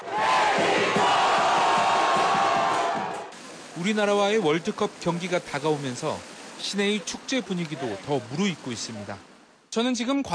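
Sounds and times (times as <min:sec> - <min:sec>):
large crowd of Mexican football fans cheering and shouting at night in Guadalajara: 0:00.0 - 0:03.3
speech: 0:03.8 - 0:10.3.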